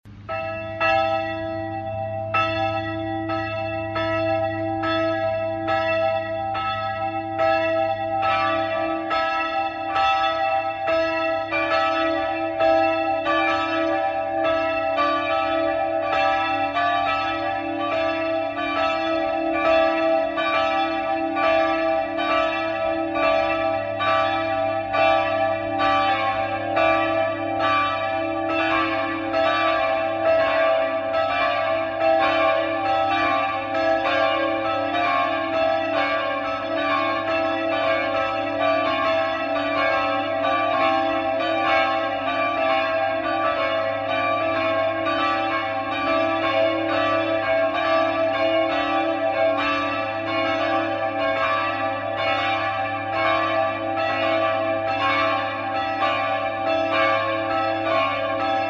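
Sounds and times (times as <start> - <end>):
multi-voice bell peal tuned C sharp D E: 0.1 - 58.6.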